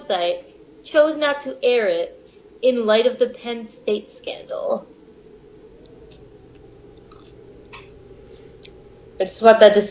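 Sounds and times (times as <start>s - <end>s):
low steady hum: 0.0s - 9.9s
speech: 0.1s - 5.0s, 9.2s - 9.9s
chewing: 7.0s - 7.9s.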